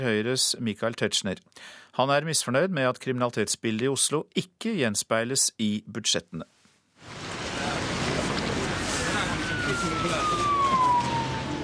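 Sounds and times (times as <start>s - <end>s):
speech: 0.0s - 7.2s, 9.8s - 10.7s
steady wash of traffic and street noise: 7.0s - 11.6s
siren wailing in the city: 8.0s - 11.6s.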